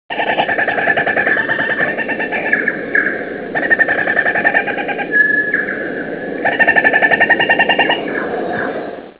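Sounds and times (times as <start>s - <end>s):
kakariki calling: 0.1s - 8.6s.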